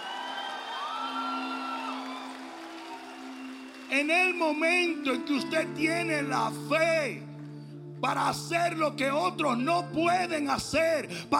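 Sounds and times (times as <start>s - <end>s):
rising whoops: 0.0s - 4.5s
standing church audience shouting and cheering in praise: 0.0s - 6.0s
speech: 3.9s - 7.3s, 8.0s - 11.3s.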